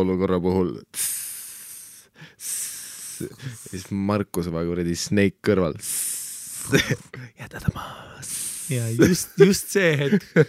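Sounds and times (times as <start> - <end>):
speech: 0.0 - 1.1, 3.2 - 10.4
person hissing through teeth: 1.0 - 3.9, 5.8 - 7.2, 8.2 - 9.0.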